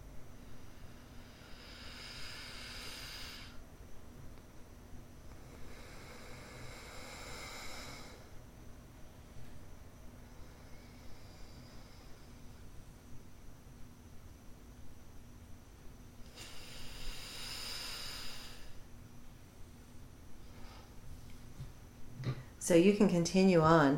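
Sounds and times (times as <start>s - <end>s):
slow nasal breathing during an alternate nostril breathing exercise: 0.4s - 3.6s, 5.3s - 8.4s, 10.2s - 12.7s, 16.3s - 18.9s
speech: 22.6s - 23.9s.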